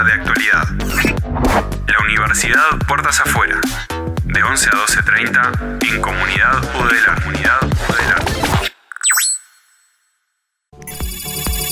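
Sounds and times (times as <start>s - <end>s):
music: 0.0s - 8.7s, 10.7s - 11.6s
speech: 0.0s - 8.7s
incoming phone call notification tone: 10.8s - 11.6s.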